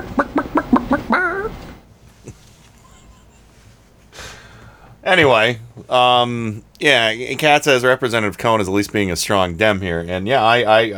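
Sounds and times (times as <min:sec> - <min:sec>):
chicken clucking: 0:00.0 - 0:01.8
speech: 0:05.0 - 0:10.9.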